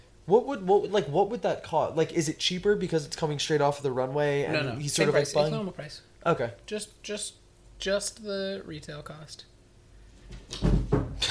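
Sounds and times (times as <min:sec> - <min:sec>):
speech: 0:00.3 - 0:09.5
cat falling with thud against furniture: 0:10.3 - 0:11.2.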